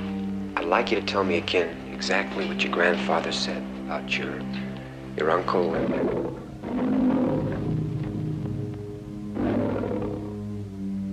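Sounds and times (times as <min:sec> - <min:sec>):
speech: 0:00.7 - 0:07.0
lion roaring in a film: 0:05.3 - 0:10.6.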